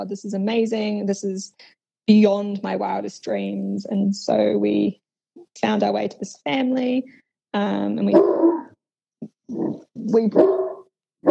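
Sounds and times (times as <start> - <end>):
speech: 0.0 - 5.0, 5.6 - 8.5, 9.5 - 10.6
male dog barking and yelping at rabbits in New Zealand: 8.1 - 8.8, 9.5 - 11.3.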